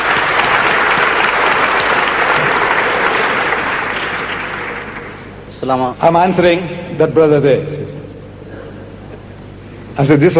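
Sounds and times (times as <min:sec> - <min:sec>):
full audience applause: 0:00.0 - 0:05.4
speech: 0:05.6 - 0:07.9, 0:10.0 - 0:10.3.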